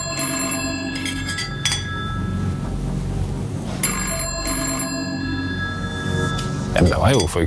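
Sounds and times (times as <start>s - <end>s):
old-fashioned telephone bell ringing in a home: 0.0s - 2.7s, 3.8s - 6.7s
speech: 6.8s - 7.4s.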